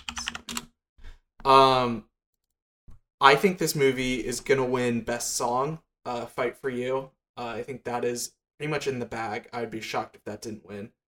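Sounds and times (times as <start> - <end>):
computer keyboard typing: 0.0 - 0.7
speech: 1.5 - 2.1, 3.2 - 11.0.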